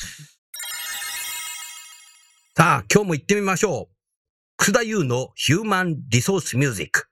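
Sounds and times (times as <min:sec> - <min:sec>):
electronic telephone ringtone: 0:00.6 - 0:02.6
speech: 0:02.6 - 0:03.9, 0:04.6 - 0:07.0.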